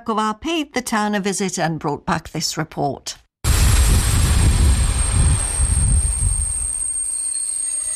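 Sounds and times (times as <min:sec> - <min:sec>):
speech: 0:00.0 - 0:03.2
small diesel train rumbling along the rails: 0:03.5 - 0:07.0
faint high whine: 0:03.5 - 0:07.9.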